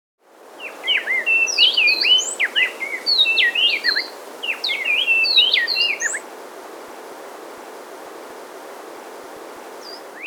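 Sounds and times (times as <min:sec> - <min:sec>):
Inca wren Thryothorus eisenmanni singing in the Andes: 0:00.6 - 0:06.2.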